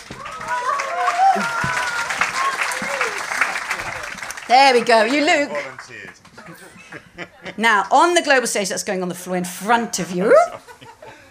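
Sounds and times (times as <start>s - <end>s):
crowd clapping and cheering for a volunteer: 0.0s - 6.6s
scattered shouts and whoops: 0.1s - 3.3s
speech: 4.5s - 6.6s, 7.2s - 10.6s
laughter: 5.3s - 7.8s, 10.0s - 11.2s.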